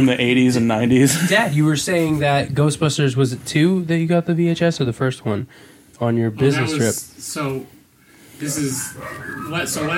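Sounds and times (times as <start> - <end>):
speech: 0.0 - 7.8, 8.4 - 9.9
dogs barking and yelping upstairs: 8.4 - 9.9.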